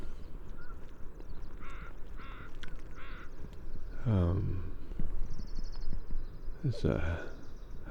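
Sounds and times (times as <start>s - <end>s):
constant noise in a salt marsh: 0.0s - 7.8s
Northwestern crow calling in a salt marsh: 1.6s - 3.3s
speech: 4.1s - 4.7s, 6.6s - 7.3s.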